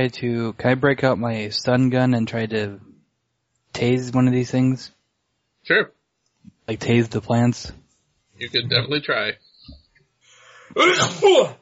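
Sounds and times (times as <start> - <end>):
speech: 0.0 - 2.9, 3.8 - 5.0, 5.6 - 6.0, 6.7 - 7.8, 8.4 - 9.8, 10.7 - 11.6
person sneezing: 10.6 - 11.6.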